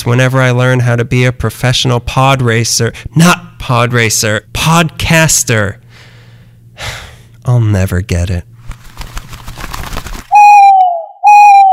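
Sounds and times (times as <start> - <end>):
speech: 0.0 - 5.8, 6.8 - 8.5
rough crackly noise: 8.7 - 10.3
owl hooting: 10.3 - 11.7.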